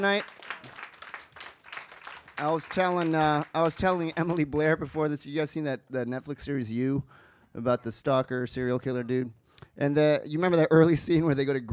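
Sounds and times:
speech: 0:00.0 - 0:00.4, 0:02.4 - 0:11.7
audience applause: 0:00.0 - 0:04.4.

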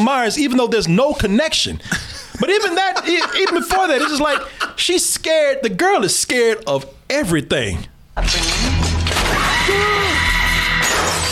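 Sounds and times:
speech: 0:00.0 - 0:08.7, 0:09.6 - 0:10.0
laughter: 0:01.9 - 0:05.0
glass shattering: 0:08.3 - 0:11.3.

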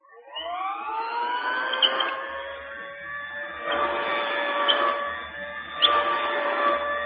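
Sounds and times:
old-style vacuum sweeper moving back and forth over a rug: 0:01.4 - 0:07.0.

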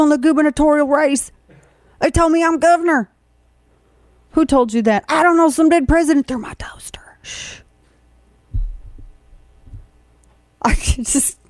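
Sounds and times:
speech: 0:00.0 - 0:01.4, 0:02.0 - 0:03.1, 0:04.3 - 0:07.6, 0:10.6 - 0:11.4
faint hum: 0:00.0 - 0:11.4
electrical density detector emitting heartbeat-like thumping pulses: 0:08.5 - 0:10.0.

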